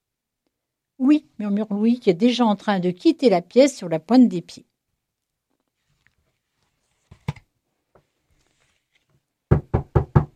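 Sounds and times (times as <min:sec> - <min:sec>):
speech: 0:01.0 - 0:04.7
knocking on a door: 0:09.5 - 0:10.3.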